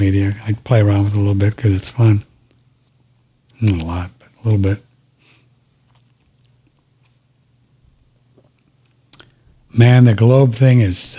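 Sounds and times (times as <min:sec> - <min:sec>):
speech: 0:00.0 - 0:02.3, 0:03.6 - 0:04.9, 0:09.7 - 0:11.1
quiet chewing of food with soft crunches: 0:05.8 - 0:07.3.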